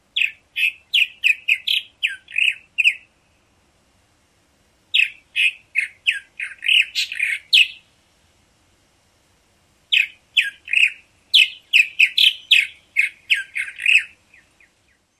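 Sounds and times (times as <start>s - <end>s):
purple martin dawn song: 0.0s - 3.6s, 4.9s - 8.0s, 9.9s - 15.1s.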